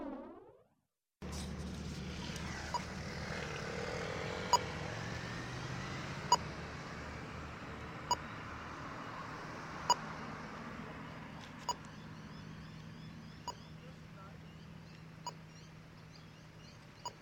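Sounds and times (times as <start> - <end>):
constant low rumble of street traffic: 1.2 - 17.1
pedestrian crossing signal short sharp beeps: 4.4 - 4.8, 6.2 - 6.6, 8.0 - 10.2, 11.6 - 15.6, 17.0 - 17.1.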